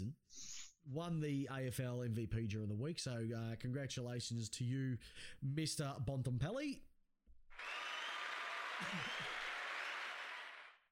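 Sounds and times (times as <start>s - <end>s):
speech: 0.8s - 6.9s, 8.8s - 9.3s
crowd applause: 7.6s - 10.8s
scattered cheers: 7.6s - 10.8s.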